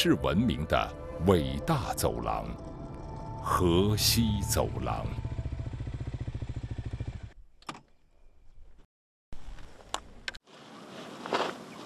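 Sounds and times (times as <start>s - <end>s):
speech: 0.0s - 2.7s, 3.4s - 5.3s
motorcycle engine rumbling: 0.8s - 7.6s.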